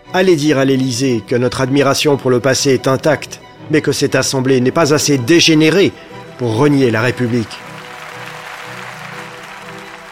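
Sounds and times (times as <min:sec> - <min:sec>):
speech: 0:00.1 - 0:07.7
deputies applauding in a parliamentary assembly during a censure debate: 0:06.1 - 0:10.1.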